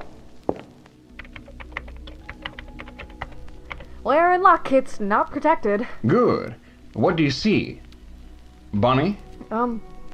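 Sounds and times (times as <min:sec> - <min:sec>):
typing on a computer terminal keyboard: 0:01.2 - 0:04.0
speech: 0:04.0 - 0:07.8, 0:08.7 - 0:09.9.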